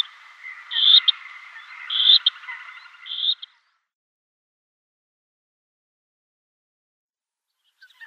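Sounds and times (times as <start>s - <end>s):
black-necked grebe squeaky high calls: 0.0s - 3.6s, 7.7s - 8.0s.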